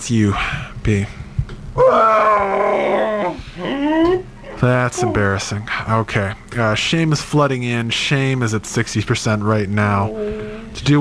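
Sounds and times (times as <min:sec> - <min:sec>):
speech: 0:00.0 - 0:01.2, 0:01.8 - 0:10.9
person howling in pain: 0:01.8 - 0:05.3, 0:10.1 - 0:10.8.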